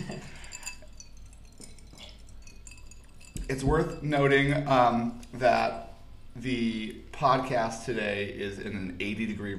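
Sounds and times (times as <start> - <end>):
glasses of mezcal clinking together in a toast in an office: 0.0 - 5.2
quiet room hum in an office: 0.0 - 9.5
speech: 3.5 - 5.8, 6.4 - 9.5.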